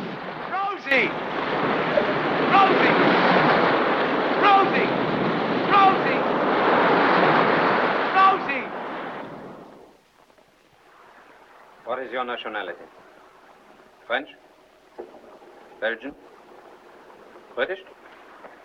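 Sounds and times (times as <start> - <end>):
huge ocean wave crashing down on a capsized boat: 0.0 - 10.0, 10.6 - 18.6
speech: 0.9 - 1.4, 12.1 - 13.1, 14.1 - 14.4, 15.8 - 16.3, 17.6 - 18.0
people clinging to a capsized boat shouting: 4.4 - 4.8, 5.7 - 6.2.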